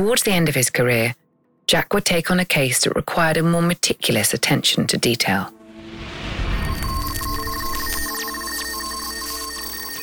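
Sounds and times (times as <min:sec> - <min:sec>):
speech: 0:00.0 - 0:05.6
telephone ringing with trilling electronic tones: 0:06.6 - 0:10.0.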